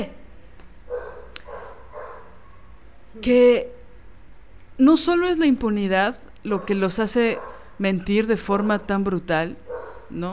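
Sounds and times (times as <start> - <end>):
small dog barking: 0.9 - 2.8, 6.6 - 7.7, 9.7 - 10.2
speech: 3.2 - 3.8, 4.8 - 10.3.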